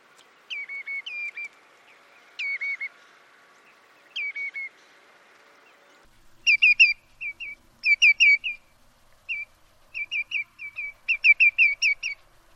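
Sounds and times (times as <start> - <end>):
redshank calls: 0.2 - 12.3
greenshank calls: 0.5 - 3.0, 4.0 - 4.8, 6.4 - 8.7, 9.3 - 12.2.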